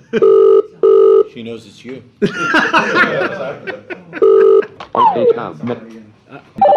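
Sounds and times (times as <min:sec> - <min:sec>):
laughter: 0:00.0 - 0:00.4, 0:02.2 - 0:05.2
speech: 0:00.1 - 0:00.6, 0:01.3 - 0:04.3, 0:05.0 - 0:06.7
telephone ringing with an electronic tone: 0:00.2 - 0:01.3, 0:04.2 - 0:04.7.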